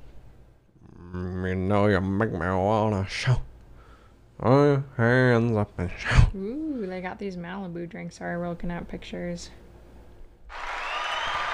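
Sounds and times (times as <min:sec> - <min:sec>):
speech: 0:01.7 - 0:03.5, 0:04.4 - 0:09.6
applause: 0:10.5 - 0:11.5.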